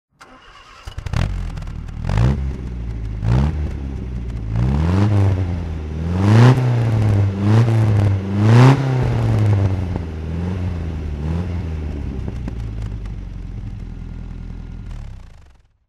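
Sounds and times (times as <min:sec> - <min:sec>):
MG MGA 1600 roadster throttle: 0:00.2 - 0:15.8.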